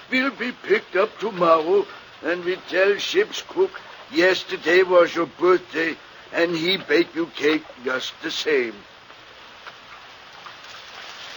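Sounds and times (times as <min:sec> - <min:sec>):
heavy rain pouring down: 0:00.0 - 0:08.8
speech: 0:00.1 - 0:08.9.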